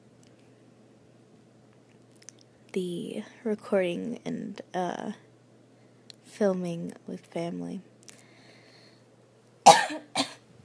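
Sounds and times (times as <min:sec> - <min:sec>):
speech: 0:02.8 - 0:05.3, 0:06.4 - 0:07.9
coughing from an itchy throat: 0:09.6 - 0:10.4.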